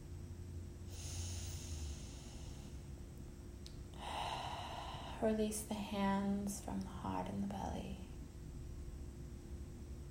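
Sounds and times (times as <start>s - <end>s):
steady low hum: 0.0s - 10.0s
full deep breath at the close of a guided relaxation exercise: 0.9s - 2.9s, 3.9s - 5.3s
speech: 5.2s - 8.1s.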